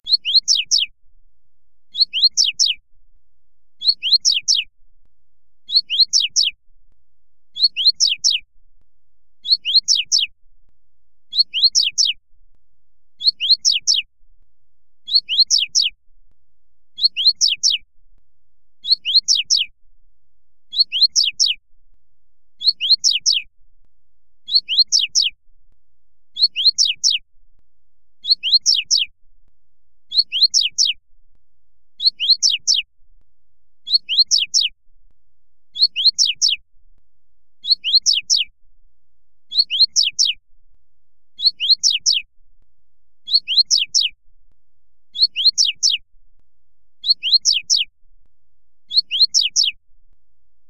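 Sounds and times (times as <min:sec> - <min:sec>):
Coleiro Tui Tui Fibra singing: 0:00.0 - 0:00.9, 0:01.9 - 0:02.8, 0:03.8 - 0:04.7, 0:05.6 - 0:06.6, 0:07.5 - 0:08.4, 0:09.4 - 0:10.3, 0:11.3 - 0:12.2, 0:13.2 - 0:14.1, 0:15.0 - 0:16.0, 0:16.9 - 0:17.8, 0:18.8 - 0:19.7, 0:20.7 - 0:21.6, 0:22.6 - 0:23.5, 0:24.4 - 0:25.4, 0:26.3 - 0:27.2, 0:28.2 - 0:29.1, 0:30.1 - 0:31.0, 0:32.0 - 0:32.9, 0:33.8 - 0:34.8, 0:35.7 - 0:36.6, 0:37.6 - 0:38.5, 0:39.5 - 0:40.4, 0:41.4 - 0:42.3, 0:43.2 - 0:44.2, 0:45.1 - 0:46.0, 0:47.0 - 0:47.9, 0:48.9 - 0:49.8.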